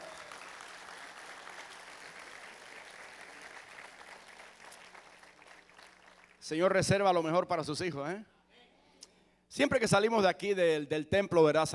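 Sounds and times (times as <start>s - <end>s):
church congregation applauding: 0.0s - 6.4s
speech: 6.5s - 8.3s, 9.6s - 11.7s.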